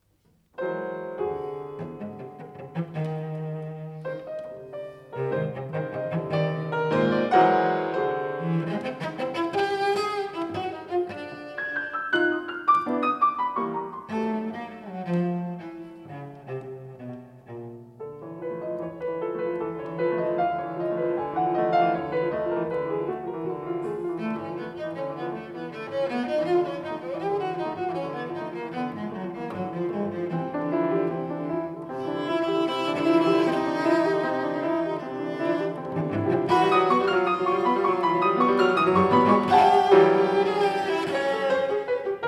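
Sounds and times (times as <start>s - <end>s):
sonata for cello and piano: 0.0s - 42.2s.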